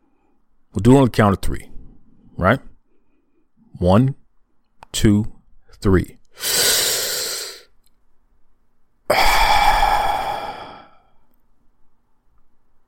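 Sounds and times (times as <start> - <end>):
speech: 0.7 - 1.7, 2.4 - 2.7, 3.8 - 4.2, 4.9 - 6.6
deep breath drawn as long breathy exhales: 6.4 - 7.7, 9.1 - 11.2.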